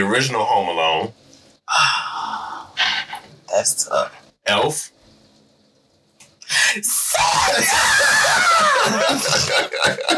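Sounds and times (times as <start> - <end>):
speech: 0.0 - 2.1, 3.5 - 5.0, 6.5 - 10.1
person screaming: 6.9 - 9.8.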